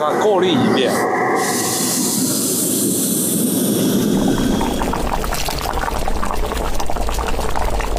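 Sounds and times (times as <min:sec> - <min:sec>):
speech: 0:00.0 - 0:01.6
broth bubbling and simmering in a pot: 0:02.2 - 0:07.9.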